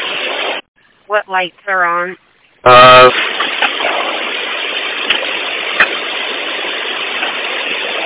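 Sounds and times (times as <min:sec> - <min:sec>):
speech: 0:01.1 - 0:03.3
city bus engine idling: 0:02.6 - 0:08.0.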